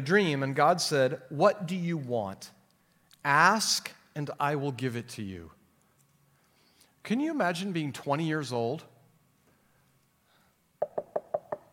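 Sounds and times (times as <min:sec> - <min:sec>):
speech: 0:00.0 - 0:02.6, 0:03.2 - 0:05.6, 0:07.0 - 0:08.9
knocking on a door: 0:10.8 - 0:11.7.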